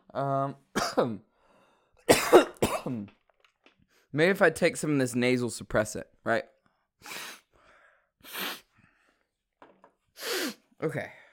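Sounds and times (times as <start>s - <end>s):
speech: 0.2s - 1.3s, 2.1s - 3.2s, 4.1s - 7.4s, 10.8s - 11.2s
person coughing hard in harsh throaty bursts: 0.8s - 1.2s, 2.1s - 3.1s.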